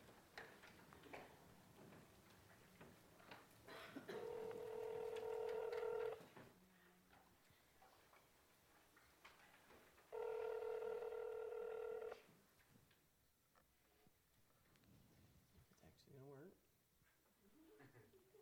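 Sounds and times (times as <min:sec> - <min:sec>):
telephone line tones as a call is placed: 0:04.2 - 0:06.2, 0:10.1 - 0:12.2.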